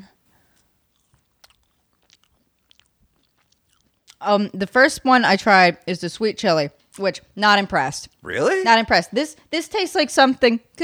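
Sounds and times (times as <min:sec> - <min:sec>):
biting and chewing french fries: 0:00.3 - 0:05.2
speech: 0:04.2 - 0:10.8.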